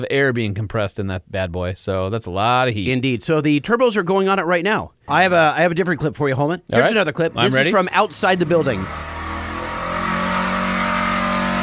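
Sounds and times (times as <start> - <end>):
speech: 0.0 - 9.1
diesel engine roaring at high revs on dyno: 7.4 - 11.6.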